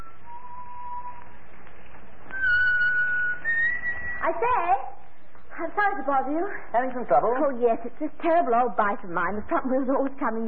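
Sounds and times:
man whistling a slow tune while riding: 0.0s - 1.4s, 2.3s - 4.2s
faint steady hiss: 0.0s - 10.4s
speech: 4.3s - 4.9s, 5.6s - 10.4s.

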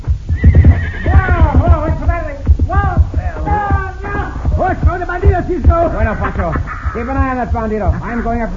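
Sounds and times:
horse hooves clopping: 0.0s - 8.5s
horse neighing in high wavering whinnies: 0.3s - 1.9s
laughter: 5.8s - 8.5s
speech: 5.8s - 8.5s.

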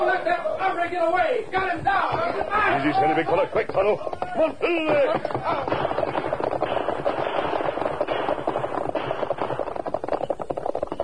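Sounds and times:
speech: 0.2s - 5.9s
gunfire in a Western shootout: 5.1s - 10.5s.

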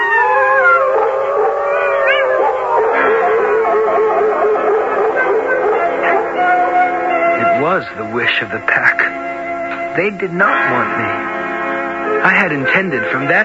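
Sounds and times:
several wolves howling in chorus: 0.0s - 10.1s
speech: 7.8s - 9.2s, 10.0s - 11.3s, 12.2s - 13.4s.

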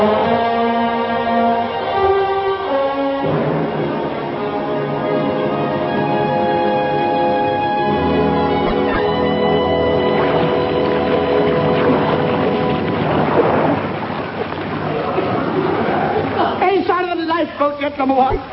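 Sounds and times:
stormy sea waves: 0.0s - 18.5s
droning tone: 3.2s - 16.4s
howling wind: 8.7s - 16.6s.

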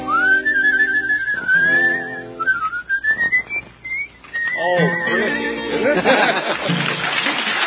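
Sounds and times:
person whistling a wavering sliding tune: 0.0s - 5.5s
laughter: 5.7s - 7.5s.

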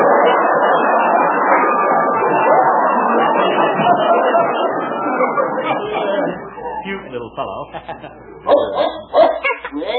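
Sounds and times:
laughter: 0.0s - 9.9s
speech: 7.1s - 8.9s
small dog scared by a cow barking and yipping: 8.5s - 9.6s.

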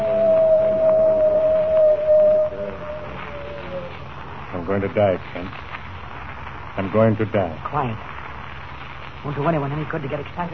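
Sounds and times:
coyote howling: 0.0s - 4.3s
speech: 4.7s - 5.7s, 6.8s - 8.1s, 9.2s - 10.5s.

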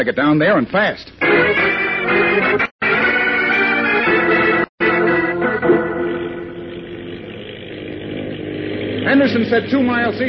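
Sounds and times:
speech: 0.0s - 2.7s, 9.1s - 10.2s
speedboat engine roaring at high speed: 3.0s - 10.2s.

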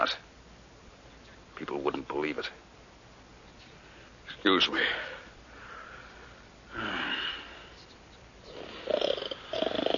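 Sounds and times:
speech: 0.0s - 0.3s, 1.6s - 2.7s, 4.4s - 5.2s
man snoring in his sleep: 6.7s - 7.4s, 8.5s - 9.9s.

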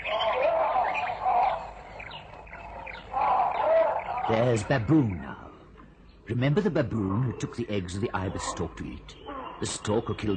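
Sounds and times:
samango monkey alarm calls: 0.0s - 4.7s, 8.1s - 10.3s
speech: 4.3s - 5.3s, 6.3s - 10.3s.

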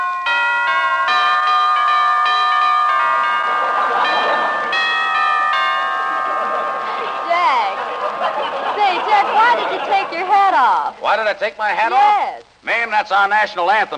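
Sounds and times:
doorbell ringing a long melodic chime tune: 0.0s - 7.4s
laughter: 3.2s - 11.4s
speech: 10.7s - 13.9s.

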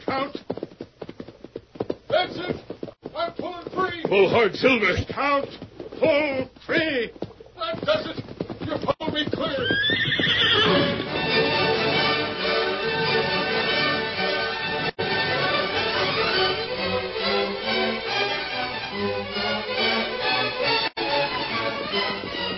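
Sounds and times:
horses whinnying loudly: 0.0s - 11.6s
hooves clip-clopping: 0.0s - 13.7s, 14.4s - 22.5s
speech: 4.1s - 7.2s, 9.2s - 10.9s.

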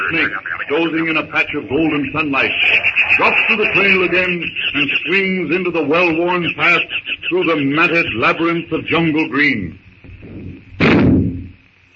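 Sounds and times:
laughter: 0.0s - 9.0s
speech: 0.0s - 9.8s
steady high-pitched hum: 0.0s - 11.9s
gunshot in the jungle: 10.8s - 11.5s.

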